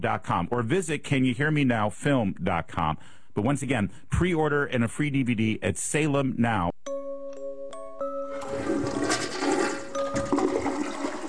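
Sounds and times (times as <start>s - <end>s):
speech: 0.0s - 7.0s
toilet flushing: 8.3s - 11.2s.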